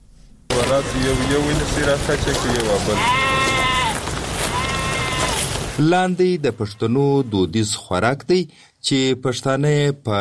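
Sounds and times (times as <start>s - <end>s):
rough noise: 0.5s - 7.4s
sheep bleating in Pishin, kept for slaughter: 0.6s - 5.6s
speech: 0.7s - 3.3s, 5.8s - 10.1s.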